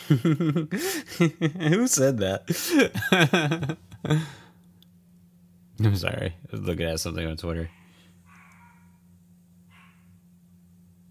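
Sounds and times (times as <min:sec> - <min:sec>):
laughter: 0:00.0 - 0:04.4
steady low electrical hum: 0:00.0 - 0:11.0
speech: 0:00.1 - 0:04.4, 0:05.8 - 0:07.8
dog barking: 0:07.7 - 0:09.0, 0:09.7 - 0:10.1.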